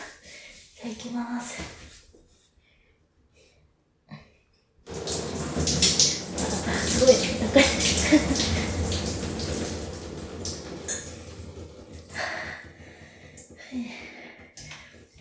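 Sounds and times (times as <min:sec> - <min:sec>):
speech: 0:00.8 - 0:01.8
shower water spraying: 0:04.9 - 0:13.4
breathy sounds: 0:12.1 - 0:15.1.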